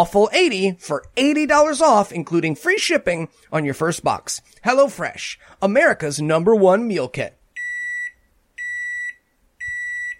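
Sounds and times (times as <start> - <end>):
speech: 0.0 - 7.4
microwave oven beeping: 7.6 - 10.1.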